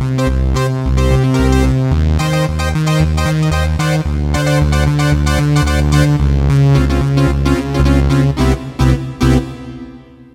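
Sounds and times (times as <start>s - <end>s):
Casio CTK-601 saw synth tone: 0.1s - 10.2s.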